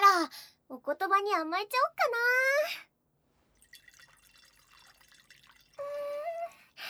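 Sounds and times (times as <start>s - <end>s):
speech: 0.3s - 2.8s
drink pouring into a glass: 3.6s - 6.8s.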